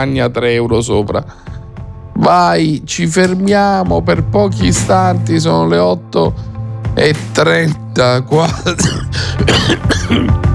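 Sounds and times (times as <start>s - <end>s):
speech: 0.0s - 1.6s, 2.2s - 10.5s
harsh coughing: 8.4s - 10.5s
throat clearing: 8.5s - 10.4s.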